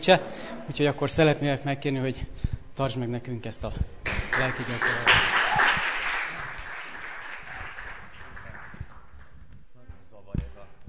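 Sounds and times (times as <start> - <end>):
speech: 0.0 - 5.4
audience applause for a speaker invited to give a talk: 4.1 - 9.4.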